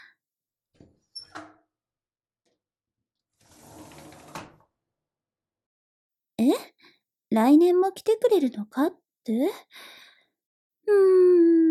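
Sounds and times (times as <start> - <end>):
window being opened on a cold day: 3.4 - 4.7
speech: 7.4 - 10.0, 10.9 - 11.6.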